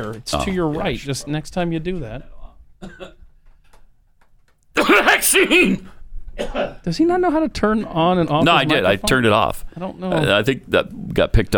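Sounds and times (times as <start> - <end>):
speech: 0.0 - 3.2, 4.8 - 11.5
short light cough: 2.8 - 3.2, 4.8 - 6.8.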